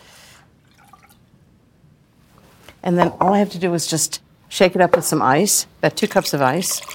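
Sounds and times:
fresh lemon juice poured into a measuring cup: 0.6 - 1.2, 6.6 - 6.9
speech: 2.8 - 6.9.

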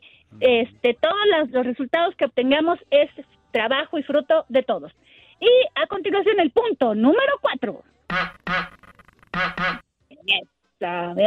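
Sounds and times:
speech: 0.4 - 8.8, 9.4 - 11.2
cartoon duck quacking: 8.1 - 9.8.

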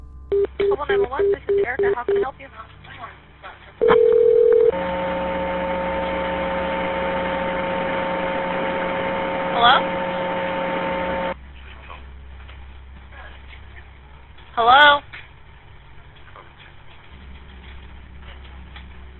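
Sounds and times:
faint hum: 0.0 - 19.1
phone keypad tones: 0.3 - 2.2, 3.8 - 4.8
telephone-line static on a recorded emergency call: 0.3 - 2.3, 3.8 - 11.4
speech: 0.8 - 2.8, 9.6 - 10.0.

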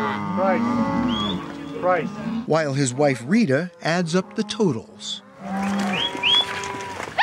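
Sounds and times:
cattle mooing at a cattle drive: 0.0 - 7.0
speech: 0.5 - 1.2, 1.8 - 5.2
short rising whistles: 1.1 - 1.4.

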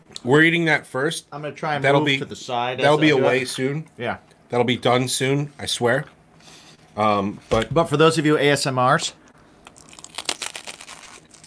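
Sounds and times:
speech: 0.2 - 6.2, 7.0 - 9.2
crisp crunch of someone biting into food: 9.6 - 11.4.

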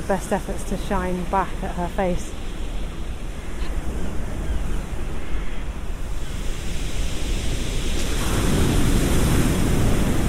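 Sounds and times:
wind noise: 0.0 - 10.2
speech: 0.1 - 2.4
waves drawing back over a pebbly shore: 6.5 - 10.2.

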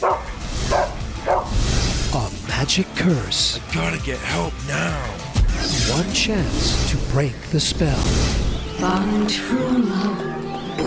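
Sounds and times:
dog barking in a movie trailer: 0.0 - 1.5
speech: 2.7 - 10.3.

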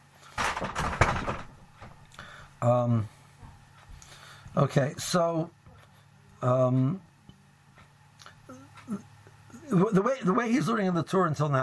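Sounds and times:
door being shut: 0.4 - 2.0
speech: 2.6 - 3.2, 4.6 - 5.6, 6.4 - 7.1, 9.7 - 11.6.

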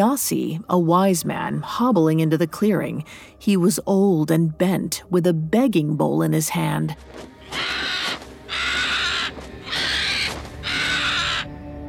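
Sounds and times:
speech: 0.0 - 7.9
bird screaming harshly: 7.4 - 11.5.

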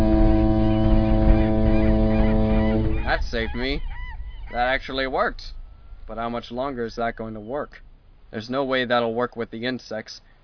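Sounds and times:
deep lighthouse foghorn blast: 0.0 - 3.8
speech: 3.1 - 3.9, 4.5 - 10.3.

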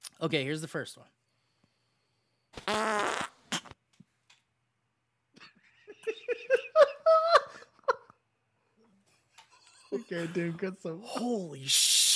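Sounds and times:
speech: 0.2 - 1.2, 9.9 - 11.9
recorded fart sounds: 2.6 - 3.8
laughter: 5.4 - 8.2.

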